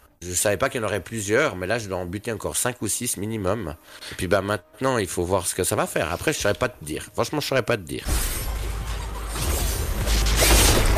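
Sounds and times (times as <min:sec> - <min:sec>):
speech: 0:00.2 - 0:08.4
video game boss exploding as it dies: 0:09.3 - 0:10.9.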